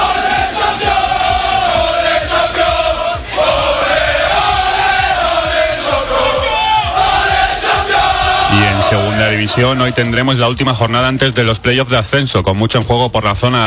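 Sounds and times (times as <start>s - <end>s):
football players chanting and shouting in unison in a locker room: 0.0s - 10.5s
speech: 9.4s - 13.6s.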